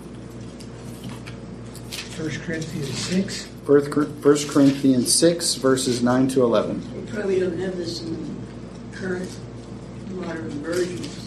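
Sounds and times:
book pages turning: 0:00.2 - 0:03.3, 0:04.3 - 0:05.0
speech: 0:02.2 - 0:08.4, 0:09.0 - 0:09.5, 0:10.2 - 0:11.2.

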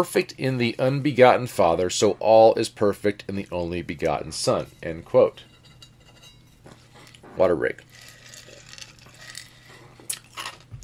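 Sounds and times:
speech: 0:00.0 - 0:05.5, 0:07.4 - 0:07.9
aerated nugget ice from an Opal ice maker being chewed: 0:07.8 - 0:10.8.

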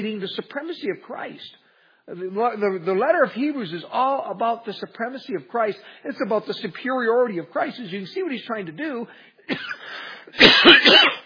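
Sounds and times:
speech: 0:00.0 - 0:11.2
person coughing during a spoken Bible teaching: 0:09.5 - 0:11.2.

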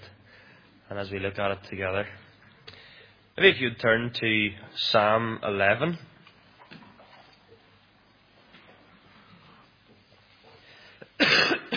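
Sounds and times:
speech: 0:00.9 - 0:02.2, 0:03.4 - 0:06.1
harsh cough from a bad chest: 0:11.1 - 0:11.7.

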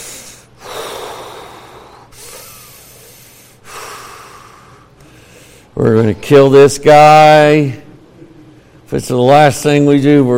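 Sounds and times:
heavy rough noisy breathing: 0:00.0 - 0:05.8
speech: 0:05.8 - 0:07.8, 0:08.9 - 0:10.3.

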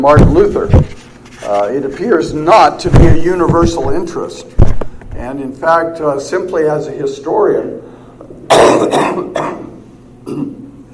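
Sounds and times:
speech: 0:00.0 - 0:04.6, 0:05.2 - 0:07.9
lecturer coughing during a lecture: 0:08.5 - 0:10.7.

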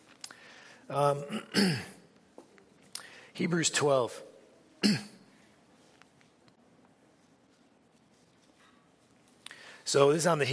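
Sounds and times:
speech: 0:00.9 - 0:02.0, 0:03.4 - 0:05.1, 0:09.9 - 0:10.5
single short cough: 0:01.2 - 0:02.0, 0:04.8 - 0:05.2.

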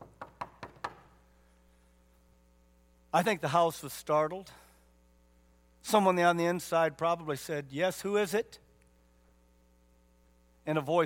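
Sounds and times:
knocking on a door: 0:00.0 - 0:01.1
speech: 0:03.1 - 0:04.6, 0:05.8 - 0:08.6, 0:10.6 - 0:11.0.

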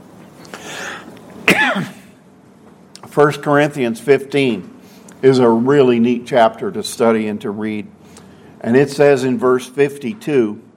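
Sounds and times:
hoarse throat clearing: 0:01.5 - 0:02.1
raspy cough with a gravelly tail: 0:01.5 - 0:02.1
speech: 0:01.7 - 0:02.0, 0:03.2 - 0:08.0, 0:08.6 - 0:10.7.

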